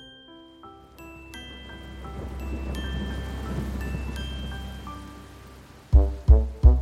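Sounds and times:
steady rain hissing and pattering: 0:00.8 - 0:06.7
heavy booming thumps: 0:05.9 - 0:06.7.

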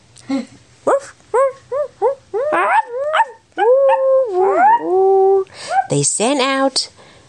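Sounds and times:
speech: 0:00.2 - 0:00.6, 0:06.0 - 0:07.0
two farm dogs howling and yipping: 0:01.3 - 0:06.0.

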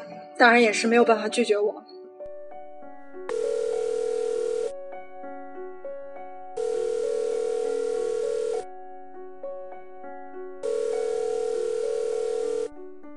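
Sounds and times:
soft music: 0:00.0 - 0:13.1
speech: 0:00.4 - 0:02.0
telephone ringback tone as a phone call is placed: 0:03.3 - 0:04.8, 0:06.6 - 0:08.7, 0:10.6 - 0:12.7.

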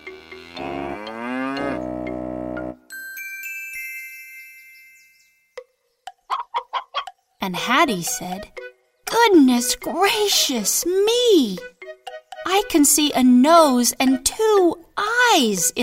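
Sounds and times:
loud drawn-out cow moo: 0:00.0 - 0:02.8
rapid string of short clucking bursts: 0:06.2 - 0:07.2
speech: 0:07.5 - 0:11.7, 0:12.5 - 0:15.8.

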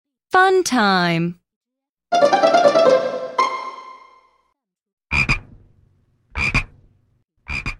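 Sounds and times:
speech: 0:00.4 - 0:01.4, 0:02.1 - 0:03.1
frog croaking loudly: 0:05.1 - 0:05.4, 0:06.4 - 0:06.7, 0:07.5 - 0:07.7.

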